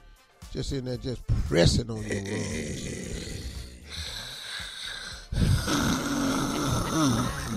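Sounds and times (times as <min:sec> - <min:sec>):
speech: 0:00.6 - 0:03.1
loud rough snoring: 0:02.0 - 0:07.5.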